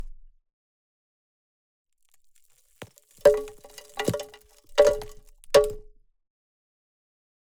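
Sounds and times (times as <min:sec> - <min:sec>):
debris falling on ceramic roof tile: 0:02.4 - 0:05.8.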